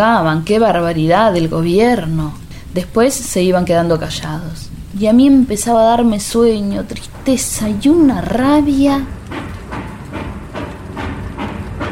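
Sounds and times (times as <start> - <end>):
speech: 0.0 - 9.5
low rumble and hiss: 0.0 - 11.8
train moving again, wheels clacking on rails: 0.0 - 11.8.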